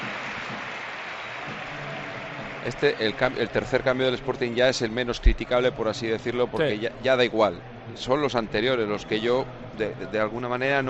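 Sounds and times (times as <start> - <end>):
large football stadium crowd clapping and cheering for a substitute player: 0.0 - 4.7
speech: 2.6 - 10.8.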